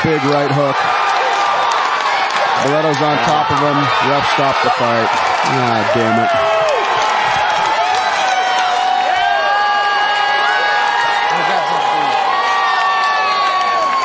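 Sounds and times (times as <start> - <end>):
speech: 0.0 - 1.0, 2.6 - 6.5
large arena crowd roaring and cheering after a fight stoppage: 0.0 - 14.0.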